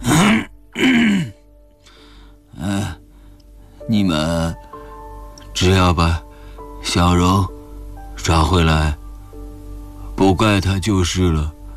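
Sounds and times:
old man groaning in a chair: 0.0s - 1.4s
old man's throaty cough: 0.0s - 1.4s
speech: 3.9s - 4.6s, 5.6s - 6.2s, 6.8s - 7.5s, 8.2s - 9.0s, 10.3s - 11.6s.

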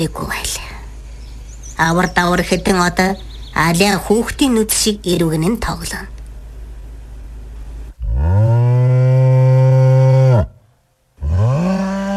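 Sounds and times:
speech: 0.0s - 0.6s, 1.8s - 6.2s
bull lowing in deep drawn-out calls: 8.0s - 12.1s.

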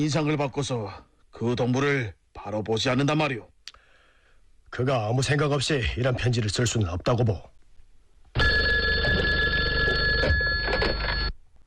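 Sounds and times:
speech: 0.0s - 3.5s, 4.7s - 7.5s
telephone ringing with electric bell tone: 8.4s - 11.4s.

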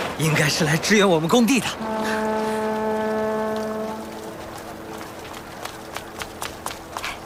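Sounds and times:
speech: 0.2s - 2.3s
steady low boat horn on a river: 1.7s - 5.6s.

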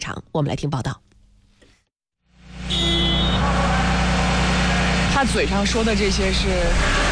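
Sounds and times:
speech: 0.1s - 1.1s, 5.2s - 7.1s
heavy truck engine starting up: 3.0s - 7.1s.

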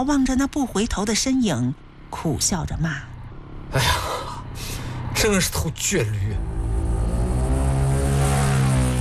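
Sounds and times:
speech: 0.0s - 3.1s, 3.7s - 4.0s, 5.2s - 6.5s
motorcycle engine revving as throttle opens: 6.4s - 8.9s.

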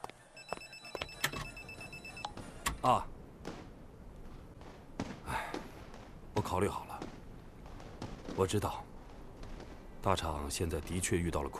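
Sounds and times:
telephone ringing with a trilling electronic tone: 0.3s - 2.4s
speech: 2.8s - 3.1s, 6.6s - 6.9s, 8.4s - 8.9s, 10.0s - 11.5s.

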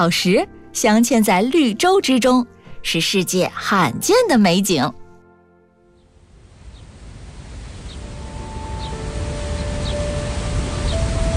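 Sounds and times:
speech: 0.0s - 5.0s
roar of rushing water: 6.2s - 11.3s.

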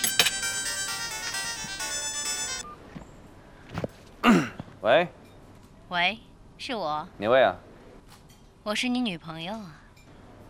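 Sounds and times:
telephone ringing with melodic electronic ringtone: 0.4s - 2.7s
soft thumps and handling noises: 3.7s - 4.7s
speech: 4.3s - 5.2s, 5.9s - 7.7s, 8.6s - 9.8s.

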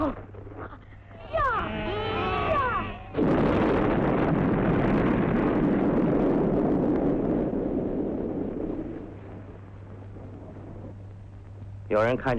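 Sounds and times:
roaring rumble of debris and echo: 0.0s - 12.3s
dynamite blast: 3.1s - 11.0s
speech: 12.0s - 12.3s.

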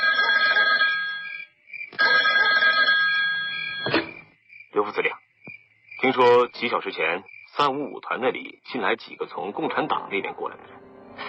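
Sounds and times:
old-fashioned telephone bell ringing: 0.0s - 4.0s
speech: 6.2s - 10.8s.

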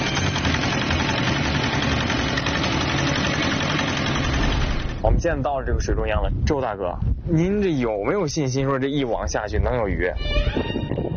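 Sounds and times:
fishing boat engine idling: 0.0s - 5.2s
speech: 5.2s - 10.9s.

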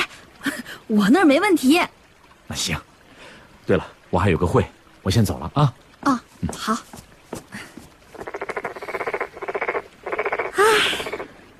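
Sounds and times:
speech: 0.9s - 2.9s, 3.7s - 7.0s
toad croaking in rattling trills: 8.1s - 11.2s.

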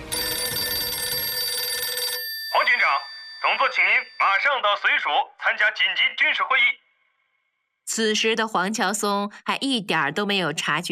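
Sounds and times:
telephone ringing for an incoming call: 0.0s - 5.2s
speech: 3.6s - 6.8s, 7.9s - 10.8s.

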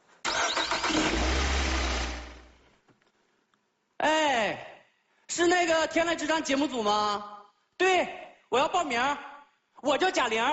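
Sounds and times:
car engine cranking and starting into a steady running rumble: 0.3s - 2.6s
speech: 5.5s - 10.5s.

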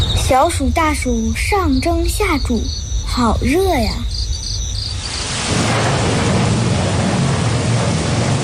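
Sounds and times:
insects chirping: 0.0s - 6.1s
deep rolling thunder rumble: 0.0s - 8.4s
speech: 0.3s - 4.2s
steady loud rainfall: 4.9s - 8.4s.

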